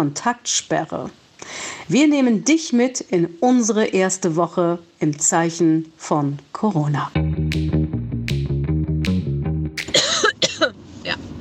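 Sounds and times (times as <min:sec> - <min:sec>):
speech: 0:00.0 - 0:07.2
rhythmic tonal music: 0:07.2 - 0:10.0
harsh raspy coughs: 0:09.8 - 0:10.8.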